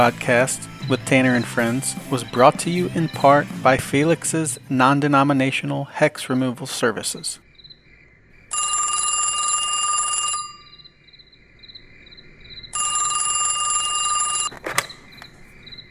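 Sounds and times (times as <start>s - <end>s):
speech: 0.0s - 7.4s
faint insect-like hum: 7.4s - 9.9s, 10.6s - 14.2s, 14.9s - 15.9s
telephone ringing: 8.5s - 10.9s, 12.7s - 15.1s
click of telephone receiver being picked up: 14.5s - 15.4s.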